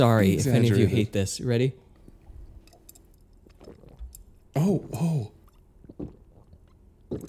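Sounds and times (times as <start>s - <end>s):
speech: 0.0s - 1.8s, 4.6s - 5.4s
wet gulping of a drink: 2.1s - 7.2s
ice crunching while chewed: 3.2s - 4.3s, 5.4s - 7.2s.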